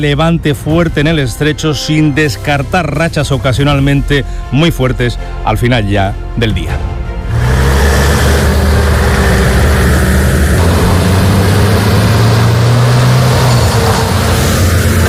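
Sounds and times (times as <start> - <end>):
speech: 0.0 - 7.0
military emergency unit truck engines rumbling: 6.8 - 15.0.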